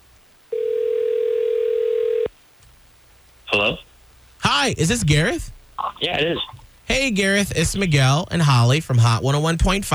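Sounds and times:
telephone dial tone of an outgoing call: 0.6s - 2.3s
speech: 3.6s - 3.9s, 4.6s - 9.9s.

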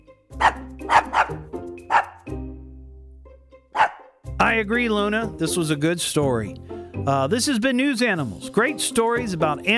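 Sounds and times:
dog barking: 0.4s - 2.3s, 3.8s - 4.2s
speech: 4.5s - 9.7s.

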